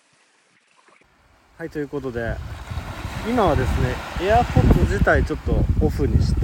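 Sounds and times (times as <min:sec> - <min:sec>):
ocean waves washing against the shore: 0:01.0 - 0:06.4
speech: 0:01.6 - 0:06.4.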